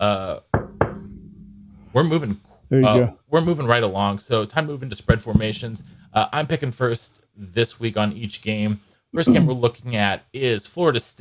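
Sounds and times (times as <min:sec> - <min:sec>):
speech: 0:00.0 - 0:00.4, 0:02.0 - 0:11.1
knuckles knocking on a hollow fake-wood desk: 0:00.6 - 0:01.1.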